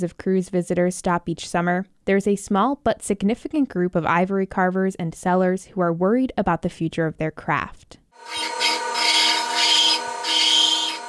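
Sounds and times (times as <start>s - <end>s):
speech: 0.0s - 8.8s
metal drill-like dental tool motor hum: 8.2s - 11.0s.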